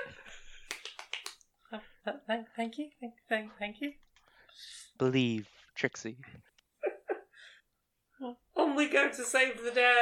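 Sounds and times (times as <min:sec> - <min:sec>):
hand clapping: 0:00.5 - 0:01.5
speech: 0:01.7 - 0:04.0, 0:04.6 - 0:06.5, 0:08.2 - 0:09.9.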